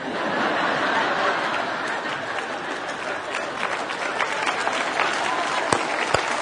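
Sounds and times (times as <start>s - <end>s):
crowd applause: 0.0s - 6.4s
laughter: 0.0s - 6.4s
sharp individual claps: 3.3s - 6.4s.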